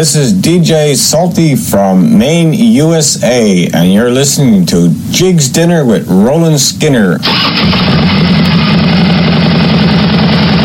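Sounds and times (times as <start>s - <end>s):
speech: 0.0s - 9.4s
motorcycle engines idling at a charity ride: 7.3s - 10.6s.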